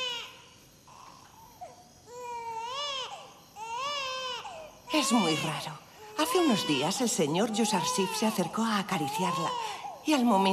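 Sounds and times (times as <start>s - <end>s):
baby crying with whimpers and wails: 2.1s - 10.5s
speech: 4.9s - 10.5s.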